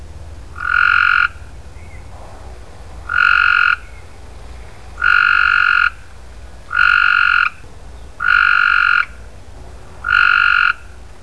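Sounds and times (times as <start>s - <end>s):
frogs in an East Texas flood: 0.6s - 1.5s, 3.0s - 4.0s, 5.0s - 6.1s, 6.7s - 7.6s, 8.2s - 9.2s, 10.0s - 11.0s.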